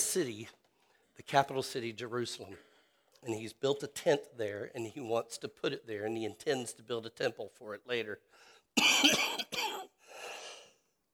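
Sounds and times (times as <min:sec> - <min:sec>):
speech: 0:00.1 - 0:00.6, 0:01.2 - 0:09.9
softer raspy breath or throat-clearing: 0:08.3 - 0:08.7, 0:10.0 - 0:10.9
person coughing harshly: 0:08.8 - 0:10.0.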